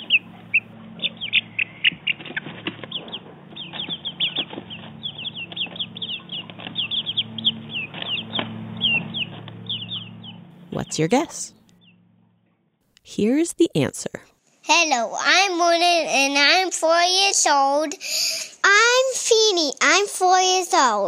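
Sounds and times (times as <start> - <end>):
four-week-old baby chickens cheeping in a flock: 0.0 - 12.0
faint steady low hum: 0.0 - 21.0
speech: 10.8 - 11.6, 13.1 - 21.0.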